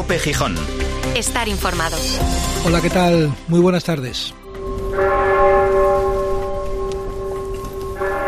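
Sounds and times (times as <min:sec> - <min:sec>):
speech: 0:00.1 - 0:04.4
church bells ringing: 0:04.5 - 0:08.2.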